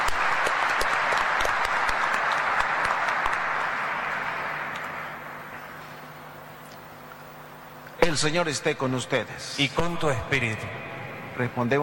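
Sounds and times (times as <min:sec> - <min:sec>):
audience clapping: 0:00.0 - 0:05.8
speech: 0:08.2 - 0:11.8.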